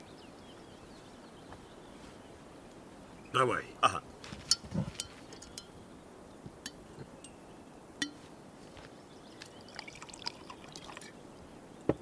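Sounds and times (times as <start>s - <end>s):
speech: 3.3s - 4.1s
liquor pouring into glasses: 9.6s - 11.2s.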